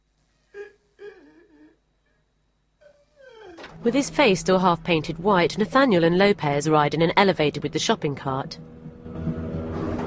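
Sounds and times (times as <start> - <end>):
man sobbing while lying curled up on the floor: 0.4 - 3.8
speech: 3.8 - 8.7.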